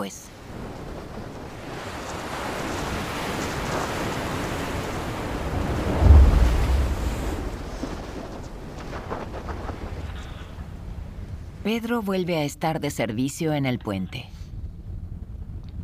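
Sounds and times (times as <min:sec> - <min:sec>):
speech: 0:00.0 - 0:00.3, 0:11.7 - 0:14.4
heavy ocean waves crashing and surging: 0:00.0 - 0:12.4
strong wind roaring across the microphone: 0:00.3 - 0:11.7.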